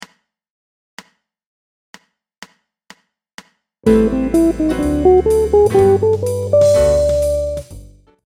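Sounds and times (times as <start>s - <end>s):
guitar playing major ii V I outlines: 3.9s - 7.6s.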